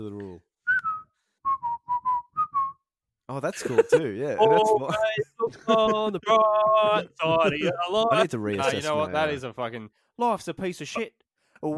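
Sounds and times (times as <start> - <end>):
speech: 0.0 - 0.5, 3.3 - 11.7
person whistling a melody: 0.6 - 2.9
laughter: 3.6 - 9.2.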